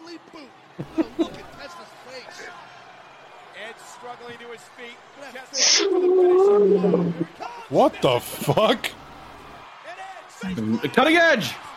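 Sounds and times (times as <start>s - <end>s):
speech: 0.3s - 1.3s, 4.0s - 9.0s, 10.4s - 11.7s
laughter: 0.8s - 1.6s
person doing a whale-like moaning call: 5.6s - 7.3s
chatter: 5.6s - 7.4s.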